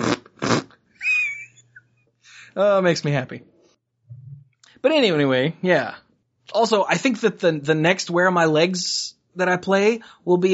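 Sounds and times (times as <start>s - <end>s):
video game fart sound effect: 0.0s - 0.8s
speech: 2.6s - 3.6s, 4.8s - 10.5s.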